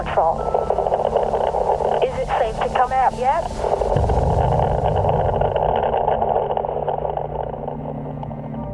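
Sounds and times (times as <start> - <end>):
steady radio static hiss: 0.0 - 8.6
speech: 0.2 - 0.6, 2.2 - 4.0
tinny voice calling for a patrol over radio transmission at a graveside: 2.0 - 3.5.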